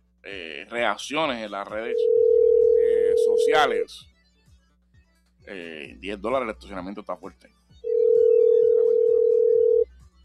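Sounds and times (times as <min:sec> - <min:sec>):
speech: 0:00.3 - 0:02.3, 0:03.2 - 0:04.1, 0:05.5 - 0:07.6
ringback tone on an outgoing telephone call: 0:01.9 - 0:03.6, 0:07.9 - 0:09.8.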